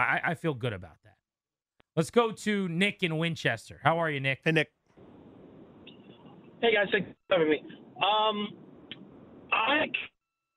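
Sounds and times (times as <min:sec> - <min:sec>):
speech: 0:00.0 - 0:01.0, 0:02.0 - 0:04.8, 0:06.6 - 0:08.6, 0:09.5 - 0:10.1
caller's voice over a bad phone line: 0:09.5 - 0:10.1.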